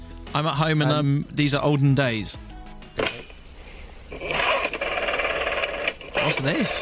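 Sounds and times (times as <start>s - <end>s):
speech: 0.4s - 3.3s, 6.2s - 6.8s
old-style telephone dial whirring and clicking: 4.1s - 6.8s.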